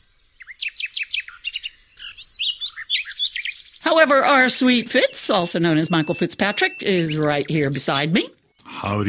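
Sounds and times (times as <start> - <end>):
birds chirping, trilling and warbling: 0.0 - 9.0
speech: 3.9 - 9.0.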